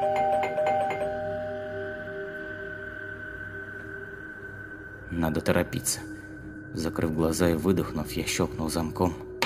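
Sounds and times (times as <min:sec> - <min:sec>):
electronic doorbell chimes: 0:00.0 - 0:02.2
speech: 0:05.1 - 0:09.3.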